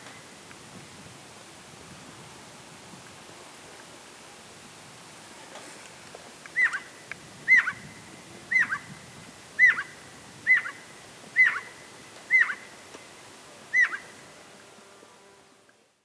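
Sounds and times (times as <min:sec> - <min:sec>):
jackdaw calling: 0:06.5 - 0:06.9, 0:09.6 - 0:12.9, 0:13.7 - 0:14.3.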